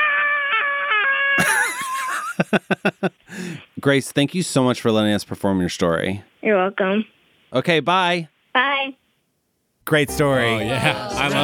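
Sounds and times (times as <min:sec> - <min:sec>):
voice imitating a girl screaming while running: 0:00.0 - 0:01.6
laughter: 0:01.4 - 0:03.3, 0:10.6 - 0:11.4
speech: 0:02.4 - 0:09.0, 0:09.9 - 0:11.4.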